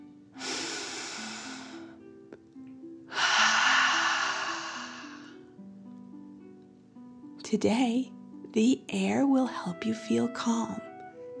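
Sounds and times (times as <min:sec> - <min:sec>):
slow deep breath in and out: 0:00.4 - 0:02.0, 0:03.1 - 0:05.5
speech: 0:07.5 - 0:10.9.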